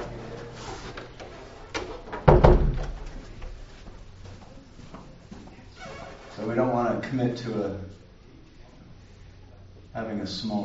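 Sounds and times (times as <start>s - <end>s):
soft room hum: 0.0s - 10.6s
door shutting with a loud solid thud: 2.1s - 3.6s
speech: 6.5s - 8.0s, 10.0s - 10.6s.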